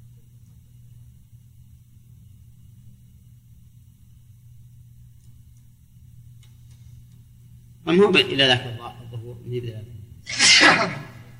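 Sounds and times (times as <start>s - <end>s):
speech: 7.9s - 11.0s
sharp sneeze with breathy hiss: 10.3s - 11.3s.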